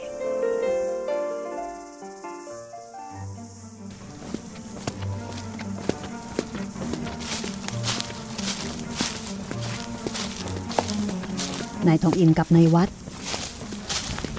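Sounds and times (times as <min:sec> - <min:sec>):
faint insect-like chirring: 0:00.0 - 0:14.3
soft music: 0:00.0 - 0:14.3
footsteps of a group of men walking at night: 0:03.9 - 0:14.3
speech: 0:11.8 - 0:13.0.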